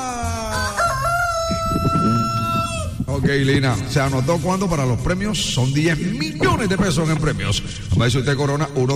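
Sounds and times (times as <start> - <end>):
rooster crowing: 0.0 - 3.0
speech: 3.2 - 8.9.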